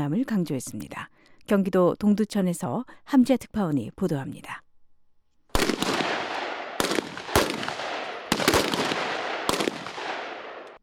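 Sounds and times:
speech: 0.0s - 4.6s
gunshots at army base: 5.5s - 10.8s
continuous firing: 5.6s - 10.8s.

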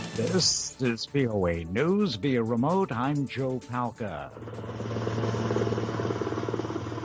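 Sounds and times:
speech: 0.2s - 5.0s
helicopter rotor chop and engine drone: 2.6s - 7.0s.

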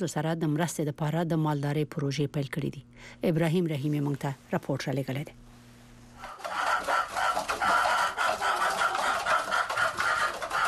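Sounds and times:
speech: 0.0s - 5.4s
about a hundred chickens clucking in an old mud house in a village: 6.2s - 10.6s.

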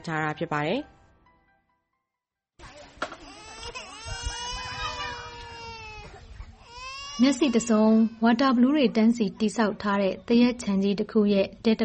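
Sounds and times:
speech: 0.0s - 1.0s, 7.2s - 11.8s
two-year-old child crying in a tarpaulin hut at a camp: 3.2s - 8.2s.

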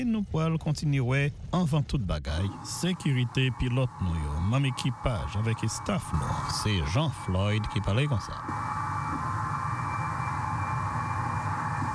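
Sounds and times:
speech: 0.0s - 8.8s
large airplane used to launch a Pegasus rocket taking off: 2.4s - 11.9s.

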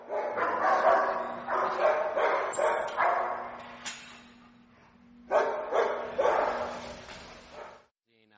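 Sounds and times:
dogs barking in a kennel: 0.0s - 3.7s, 5.3s - 7.9s
steady low hum: 0.0s - 7.6s.

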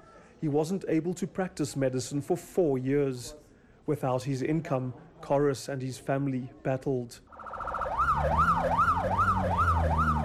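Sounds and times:
speech: 0.4s - 7.3s, 8.2s - 9.4s
police vehicle siren wailing while rushing to a car crash in South Africa: 7.3s - 10.2s.

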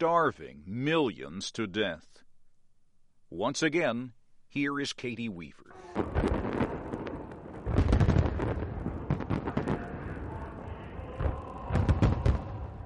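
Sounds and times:
speech: 0.0s - 2.2s, 3.3s - 6.4s
fireworks display booming thuds: 5.9s - 10.4s, 11.2s - 12.8s
heavy fireworks display blasts: 5.9s - 12.8s.

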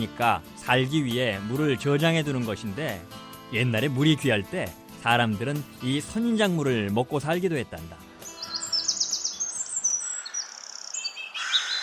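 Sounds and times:
speech: 0.0s - 8.0s
cactus wrens chirping in saguaro cactus in the Arizona desert: 8.0s - 11.8s.

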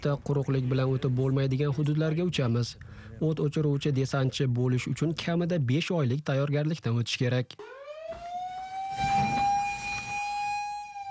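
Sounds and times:
speech: 0.0s - 8.2s
fire station siren wailing: 7.6s - 11.0s.

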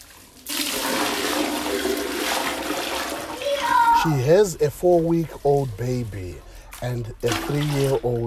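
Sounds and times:
bucket of used bathwater gushing into a toilet bowl: 0.0s - 4.3s, 7.1s - 8.2s
speech: 4.0s - 8.2s.

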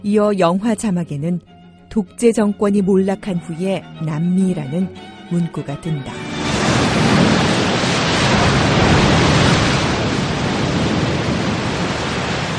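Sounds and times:
speech: 0.0s - 6.2s
ocean waves breaking on shore: 6.1s - 12.5s.

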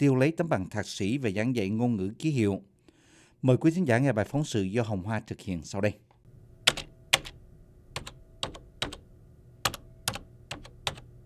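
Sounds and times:
speech: 0.0s - 2.7s, 3.4s - 6.1s
typewriter keys clacking: 8.0s - 9.0s, 9.7s - 11.0s.

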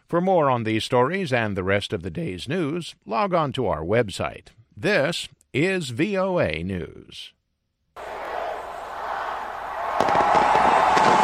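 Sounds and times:
speech: 0.1s - 7.4s
crowd roar at a New Year's celebration: 8.0s - 11.2s
fireworks bangs and crackles: 9.8s - 11.2s.

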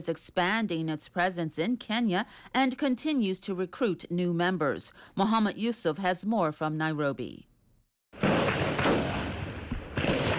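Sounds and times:
speech: 0.0s - 7.5s
gunfire: 8.2s - 10.3s.

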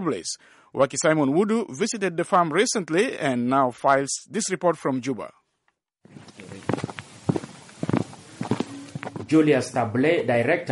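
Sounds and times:
speech: 0.0s - 5.4s, 9.3s - 10.6s
footsteps of a man walking to a farm: 6.1s - 9.4s.

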